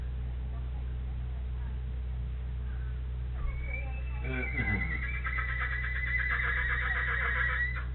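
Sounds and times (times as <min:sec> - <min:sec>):
low steady hum: 0:00.0 - 0:07.9
horse whinnying: 0:03.6 - 0:07.9.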